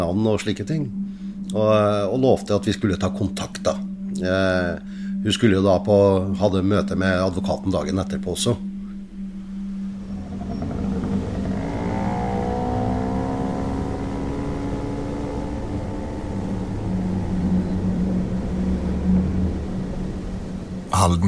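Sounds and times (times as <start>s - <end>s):
speech: 0.0s - 8.7s, 21.0s - 21.2s
moped engine droning while ridden on a cold autumn evening in Halden: 8.6s - 20.9s.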